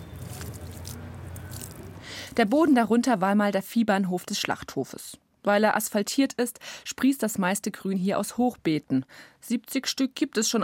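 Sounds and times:
damp soil squishing as it is pressed around a plant: 0.0 - 2.8
speech: 2.4 - 10.6.

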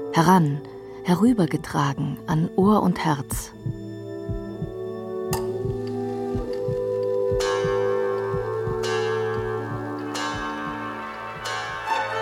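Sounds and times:
speech: 0.1 - 3.8
low rhythmic ticking of clockwork: 3.6 - 11.9
church bell striking: 7.4 - 12.1.

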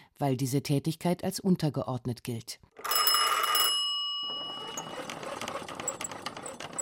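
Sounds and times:
speech: 0.2 - 2.7
old telephone bell ringing in a telephone exchange: 2.8 - 6.8.

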